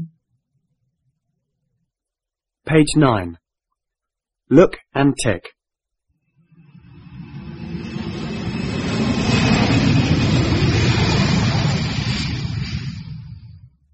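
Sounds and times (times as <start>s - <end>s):
speech: 2.7s - 3.4s, 4.5s - 5.6s
aeroplane flying overhead: 6.4s - 13.8s.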